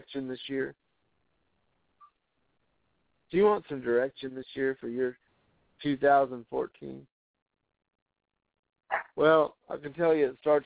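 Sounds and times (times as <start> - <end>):
speech: 0.1 - 0.8, 3.3 - 5.2, 5.8 - 7.1, 9.2 - 10.6
pet chihuahua barking: 8.9 - 9.1.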